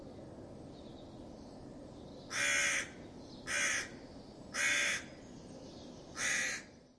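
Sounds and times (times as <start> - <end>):
crow giving harsh alarm caws: 2.3 - 4.0, 4.6 - 5.1, 6.2 - 6.7.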